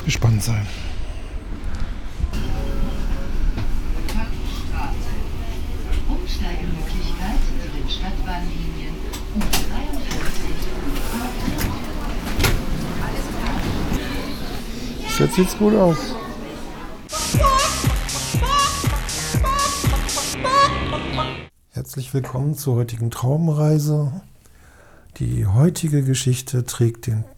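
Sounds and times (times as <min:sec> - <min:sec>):
speech: 0:00.0 - 0:01.0, 0:06.3 - 0:11.8, 0:15.2 - 0:16.2, 0:22.0 - 0:24.3, 0:25.2 - 0:27.3
subway train in motion rumbling: 0:00.0 - 0:21.5
faint murmuring voices: 0:02.1 - 0:21.5.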